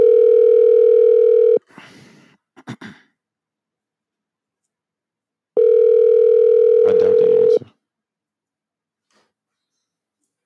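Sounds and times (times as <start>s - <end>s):
outgoing phone call electronic ringback tone: 0.0s - 1.6s, 5.6s - 7.6s.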